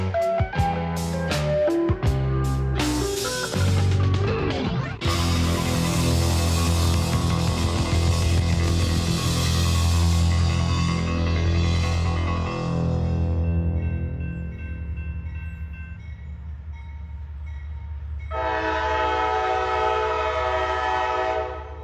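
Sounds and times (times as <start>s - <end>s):
long freight train rumbling through Appalachian valleys: 0.0s - 4.4s, 5.1s - 21.8s
multi-tone freight train horn blast: 18.3s - 21.8s.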